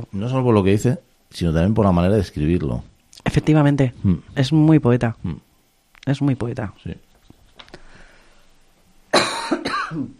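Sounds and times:
speech: 0:00.0 - 0:07.1, 0:09.9 - 0:10.1
person coughing harshly: 0:09.1 - 0:10.1.

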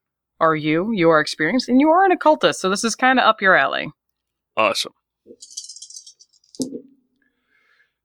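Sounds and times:
speech: 0:00.4 - 0:04.0, 0:04.6 - 0:05.6
three dice rattling in a cupped hand: 0:05.4 - 0:06.7.

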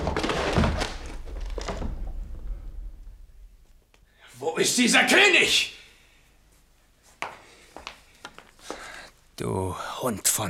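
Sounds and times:
door being broken open in a stage drama: 0:00.0 - 0:03.0
speech: 0:04.6 - 0:05.7, 0:09.4 - 0:10.4.

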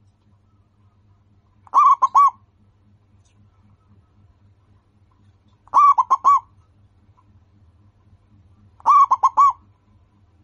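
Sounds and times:
local-strain zebra dove cooing: 0:01.7 - 0:02.4, 0:05.7 - 0:06.6, 0:08.8 - 0:09.7.

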